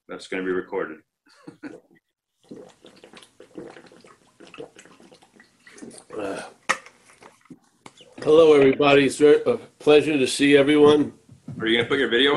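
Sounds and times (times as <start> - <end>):
speech: 0.1 - 3.0, 8.2 - 12.3
person drinking water: 1.5 - 8.8
faint voices murmuring: 7.9 - 9.1.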